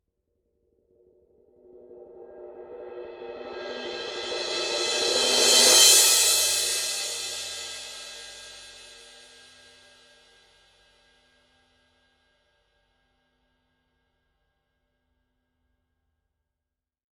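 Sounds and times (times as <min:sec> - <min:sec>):
18-inch bronze alloy crash cymbal swell: 0:02.8 - 0:09.7.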